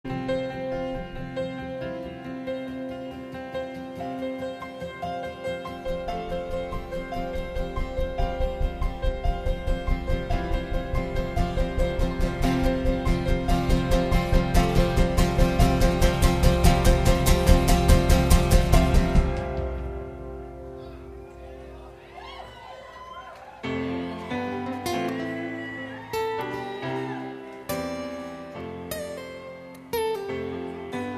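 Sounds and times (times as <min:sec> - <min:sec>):
guitar: 0:00.0 - 0:31.1
piano: 0:00.0 - 0:31.1.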